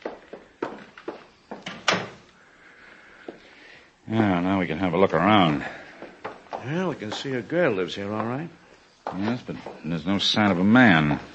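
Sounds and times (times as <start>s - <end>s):
door unlocked with a master key and opened: 1.6s - 2.2s
speech: 4.1s - 5.8s, 6.6s - 11.3s.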